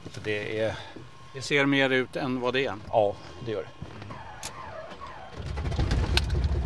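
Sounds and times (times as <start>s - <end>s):
birds chirping: 0.0s - 5.8s
speech: 0.2s - 3.9s
small airplane engine starting up: 4.4s - 6.6s
sharp clicks and rattles: 5.3s - 6.6s.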